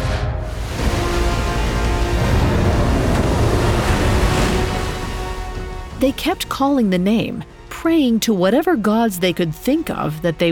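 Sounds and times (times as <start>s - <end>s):
ocean waves crashing: 0.4s - 7.7s
speech: 6.0s - 10.5s.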